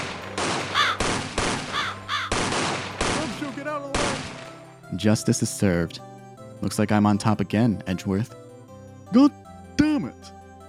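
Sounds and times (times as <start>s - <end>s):
loud gunfire bursts: 0.0s - 4.6s
crows cawing harshly: 0.6s - 2.6s
speech: 5.0s - 8.4s, 9.1s - 9.4s.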